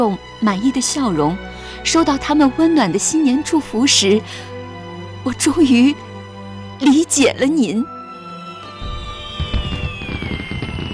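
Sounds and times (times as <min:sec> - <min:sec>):
speech: 0:00.0 - 0:04.5, 0:05.2 - 0:06.1, 0:06.8 - 0:08.0
high whistling tone sliding downward: 0:08.2 - 0:10.9
fireworks exploding during the Spring Festival: 0:08.6 - 0:10.9.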